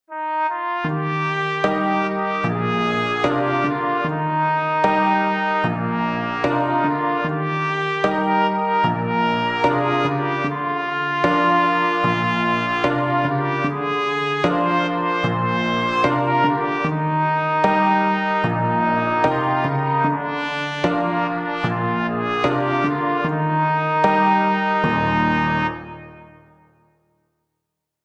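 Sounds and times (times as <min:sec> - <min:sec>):
piano: 0:00.1 - 0:26.8
trumpet in B: 0:00.1 - 0:27.0.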